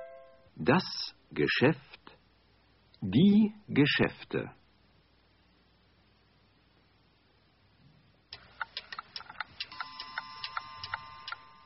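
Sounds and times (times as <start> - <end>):
speech: 0.6 - 1.9, 3.0 - 4.6
Swiss watch ticking in a shop: 8.4 - 11.6.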